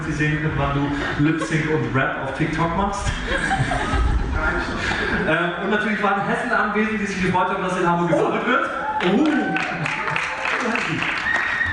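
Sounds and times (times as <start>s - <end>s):
speech: 0.1s - 9.8s
laughter: 0.2s - 6.4s, 9.2s - 11.5s
cheering: 8.2s - 11.7s
crowd applauding: 8.8s - 11.7s.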